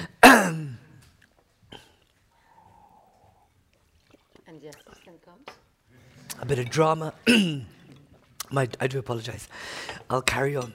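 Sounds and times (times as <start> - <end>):
throat clearing from someone with something caught in the throat: 0.1 - 0.9, 7.3 - 7.7
speech: 4.6 - 7.8, 8.5 - 10.7.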